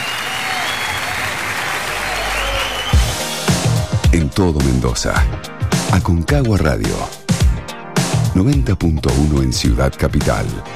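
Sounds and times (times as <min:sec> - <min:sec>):
large audience applauding: 0:00.0 - 0:03.4
speech: 0:04.2 - 0:07.2, 0:08.4 - 0:10.7.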